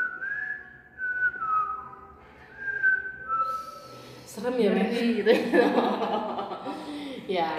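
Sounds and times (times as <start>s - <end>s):
person whistling a wavering sliding tune: 0.0s - 4.2s
speech: 4.4s - 6.4s, 7.3s - 7.5s
laughter: 5.0s - 7.5s.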